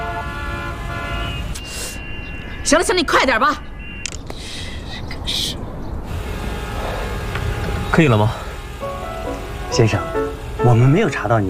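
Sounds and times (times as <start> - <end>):
car horns honking in a traffic jam: 0.0 - 2.9, 6.1 - 11.4
low traffic rumble: 0.0 - 11.4
speech: 2.7 - 3.7, 8.0 - 8.4, 9.7 - 11.4.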